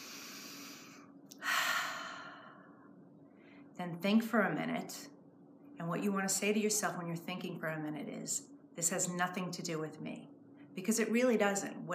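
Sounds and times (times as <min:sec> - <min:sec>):
slow easy breath with gentle exhale: 0:00.0 - 0:03.7
speech: 0:03.8 - 0:05.2, 0:05.8 - 0:11.9.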